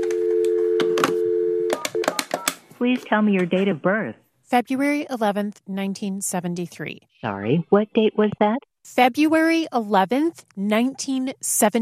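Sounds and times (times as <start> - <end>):
telephone dial tone while calling a health insurance company: 0.0 - 2.6
telephone keypad beeps: 1.7 - 2.6
speech: 2.8 - 11.8.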